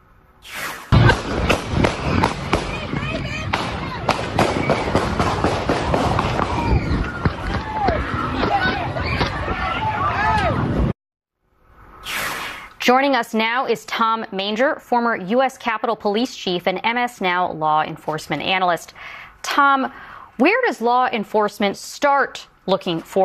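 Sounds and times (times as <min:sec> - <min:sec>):
rapid bursts of gunshots outdoors: 0:00.9 - 0:08.0
crowd noise: 0:01.0 - 0:10.9
people running in every direction: 0:01.0 - 0:10.9
people shouting: 0:01.0 - 0:10.9
speech: 0:12.9 - 0:23.2.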